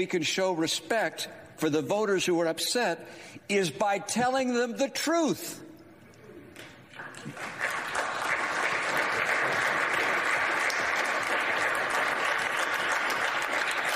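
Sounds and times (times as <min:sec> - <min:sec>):
speech: 0:00.0 - 0:05.6
large crowd applauding in a legislative chamber: 0:06.9 - 0:13.9.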